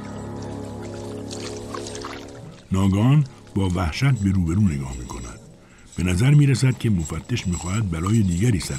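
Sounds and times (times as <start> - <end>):
water sloshing and splashing as hands are dipped and rubbed clean: 0.0 - 4.3
low droning tone: 0.0 - 8.7
speech: 2.7 - 5.4, 6.0 - 8.7.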